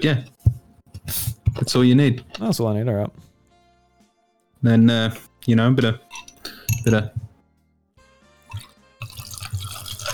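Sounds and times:
speech: 0.0s - 0.4s, 1.1s - 3.2s, 4.6s - 6.0s, 6.8s - 7.2s
glass clinking while pouring a drink: 5.9s - 7.3s, 8.5s - 10.1s
liquid trickling from a drink being poured: 8.5s - 10.1s.

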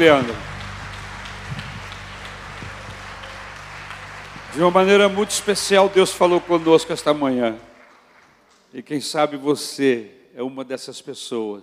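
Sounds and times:
speech: 0.0s - 0.4s, 4.6s - 7.7s, 8.7s - 11.6s
low electrical hum: 0.0s - 8.2s
audience applauding: 0.0s - 8.7s.

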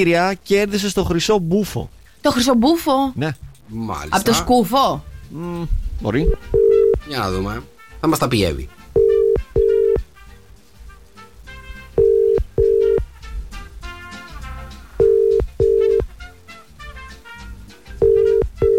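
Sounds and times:
speech: 0.0s - 8.8s
soft music: 0.8s - 18.7s
telephone line ringing tone: 6.5s - 7.0s, 9.0s - 10.0s, 12.0s - 13.0s, 15.0s - 16.0s, 18.0s - 18.7s.

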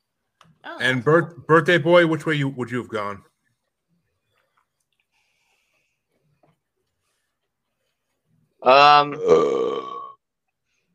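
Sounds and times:
speech: 0.6s - 3.3s, 8.6s - 9.8s
loud drawn-out burp: 8.6s - 10.3s.

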